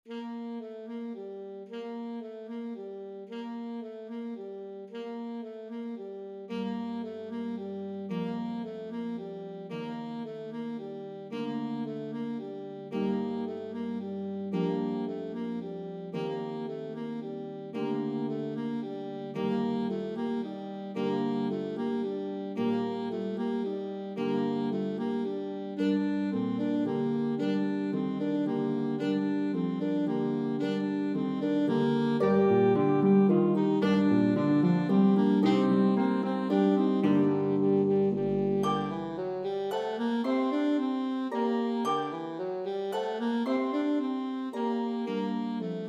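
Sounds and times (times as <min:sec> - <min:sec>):
E flat saxophone: 0:00.0 - 0:45.8
pedal harp: 0:28.8 - 0:45.8.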